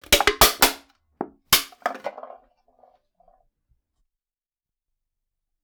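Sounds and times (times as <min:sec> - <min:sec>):
drinks can crushing: 0:00.1 - 0:00.8, 0:01.6 - 0:02.4.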